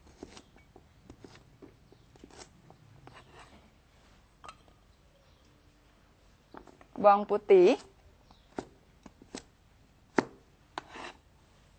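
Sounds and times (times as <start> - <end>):
speech: 7.0 - 7.9
knife chopping red chilli on a board: 10.1 - 10.9.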